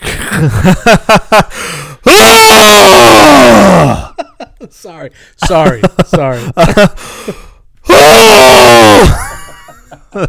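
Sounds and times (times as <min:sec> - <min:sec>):
speech: 0:00.4 - 0:04.0, 0:04.6 - 0:09.2
voice imitating screaming while throwing up: 0:02.1 - 0:04.1, 0:07.9 - 0:09.4.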